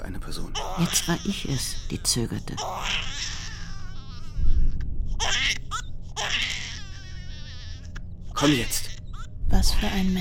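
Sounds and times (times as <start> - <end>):
low rumbling background: 0.0 - 10.1
speech: 0.2 - 3.4, 8.4 - 8.9, 9.5 - 10.1
baby crying: 0.5 - 10.1.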